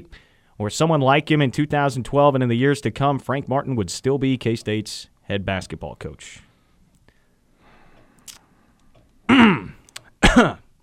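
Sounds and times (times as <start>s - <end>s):
speech: 0.0s - 6.5s, 10.3s - 10.6s
person clearing throat: 9.3s - 10.7s.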